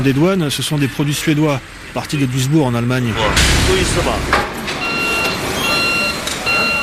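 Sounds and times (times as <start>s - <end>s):
speech: 0.0s - 4.5s
bulldozers rumbling while leveling fields in the open air: 0.0s - 6.8s
high steady bulldozer reversing alarm beeping: 3.1s - 6.8s.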